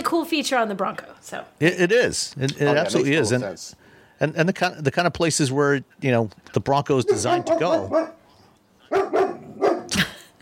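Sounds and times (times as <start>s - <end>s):
speech: 0.2s - 8.2s
dog barking: 7.0s - 8.2s, 8.9s - 9.9s.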